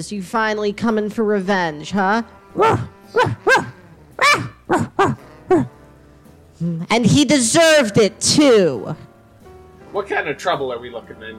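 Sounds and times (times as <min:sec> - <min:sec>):
speech: 0:00.0 - 0:03.6, 0:04.7 - 0:05.7, 0:06.6 - 0:09.1, 0:10.0 - 0:11.3
dog barking: 0:02.6 - 0:05.8.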